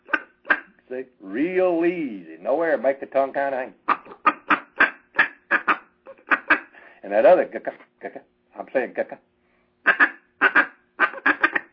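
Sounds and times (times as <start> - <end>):
duck call blown to imitate quacking: 0.0 - 0.8, 3.8 - 6.8, 9.8 - 11.7
speech: 0.9 - 3.8, 7.1 - 9.3.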